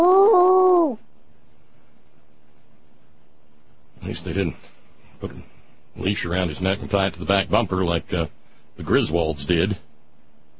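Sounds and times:
dog whimpering: 0.0s - 1.0s
speech: 4.2s - 9.9s.

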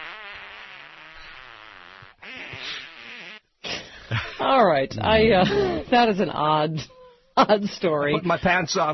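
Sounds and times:
long buzzy fart with sputtering bursts: 0.0s - 3.5s
speech: 4.1s - 8.9s.

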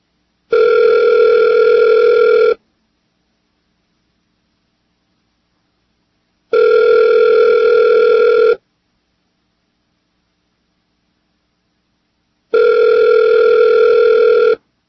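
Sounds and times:
telephone line electronic ring tone: 0.5s - 2.6s, 6.5s - 8.6s, 12.5s - 14.6s.

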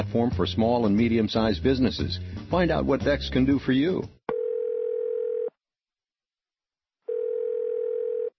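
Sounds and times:
speech: 0.0s - 4.2s
telephone ringing with electronic tone bursts: 4.3s - 5.5s, 7.1s - 8.3s.

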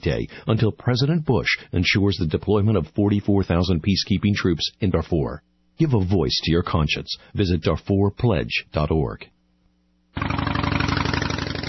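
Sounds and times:
speech: 0.0s - 9.4s
loud motorcycle engine roaring with a throbbing rumble: 10.2s - 11.6s.

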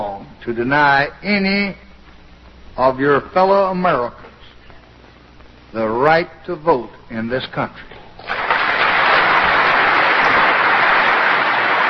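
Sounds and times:
speech: 0.4s - 1.8s, 2.8s - 4.3s, 5.7s - 8.4s
large crowd applauding on an old recording: 8.2s - 11.8s.

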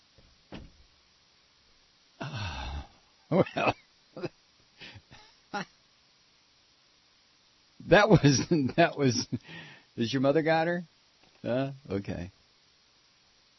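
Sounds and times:
door shutting with a solid thud: 0.2s - 0.9s
short breathy vocal sounds: 2.2s - 3.1s
speech: 3.3s - 4.4s, 7.9s - 12.4s.

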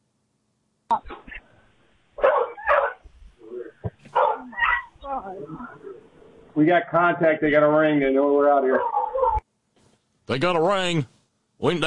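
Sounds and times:
dog barking: 2.2s - 3.0s, 4.1s - 4.9s, 8.7s - 9.4s
dog whining: 4.1s - 5.9s, 8.8s - 9.4s
speech: 6.6s - 9.0s, 10.3s - 11.8s.

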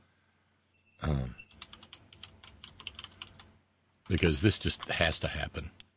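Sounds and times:
speech: 1.0s - 1.4s, 4.1s - 5.8s
noisy computer keyboard clacking while being typed on: 1.5s - 3.5s.

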